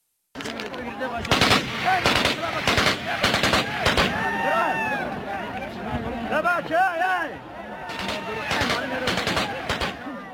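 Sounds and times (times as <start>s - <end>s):
gunfire bursts: 1.3s - 4.2s, 8.0s - 10.1s
agitated voices shouting: 1.8s - 10.3s.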